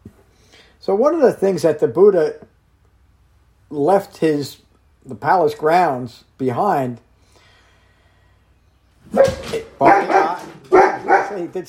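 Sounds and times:
speech: 0.8 - 2.5, 3.7 - 7.0, 9.1 - 10.0, 11.4 - 11.6
dog barking: 9.1 - 11.6.

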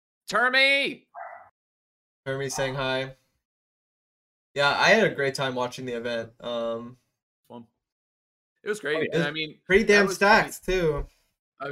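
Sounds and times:
speech: 0.3 - 1.1, 2.3 - 3.2, 4.6 - 7.7, 8.6 - 11.7
dog barking: 1.2 - 1.5.

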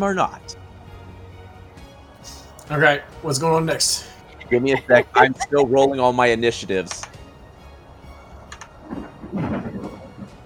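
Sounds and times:
speech: 0.0 - 0.6, 2.7 - 7.0
laughter: 4.4 - 6.2
thunder rumble: 7.2 - 10.4.

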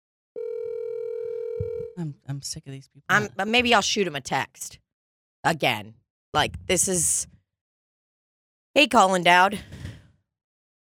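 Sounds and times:
steady phone tone from a failed phone call: 0.4 - 2.0
speech: 1.6 - 4.8, 5.4 - 7.3, 8.8 - 9.8.

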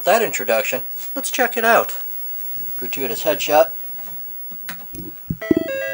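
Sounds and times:
speech: 0.0 - 2.1, 2.8 - 3.8
soft knocks and clicks: 5.0 - 5.8.

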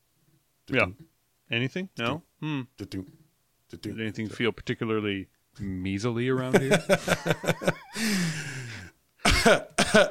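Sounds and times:
speech: 0.7 - 8.5, 9.5 - 10.1
laughter: 6.5 - 8.6
person coughing: 8.1 - 10.1.

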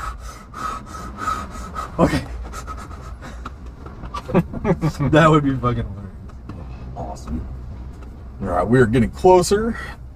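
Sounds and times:
person imitating heavy out-of-breath panting: 0.0 - 3.6
speech: 2.0 - 2.4, 4.3 - 6.0, 7.2 - 7.6, 8.4 - 10.0.

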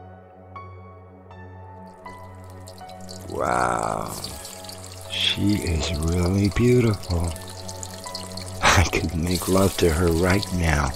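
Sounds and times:
water drips: 1.9 - 10.9
water running from a shower: 1.9 - 10.9
speech: 3.3 - 4.4, 5.2 - 7.4, 8.8 - 10.9.

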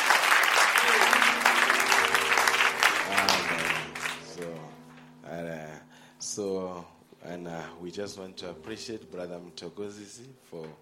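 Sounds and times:
church audience applause: 0.0 - 4.7
speech: 6.4 - 10.8.

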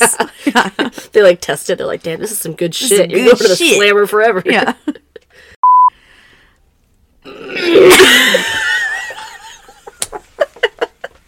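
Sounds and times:
speech: 0.0 - 5.0
short electronic beep: 5.6 - 5.9
laughter: 7.7 - 11.2.

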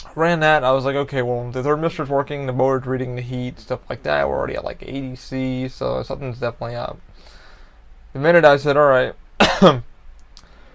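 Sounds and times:
speech: 0.1 - 7.4, 8.1 - 9.9
person coughing: 9.4 - 9.9.

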